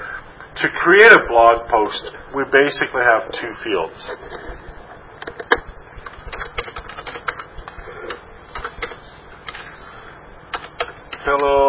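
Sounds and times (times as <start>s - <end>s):
speech: 0.6s - 4.7s
typing on a computer keyboard: 5.2s - 7.5s, 8.1s - 9.6s, 10.5s - 11.5s.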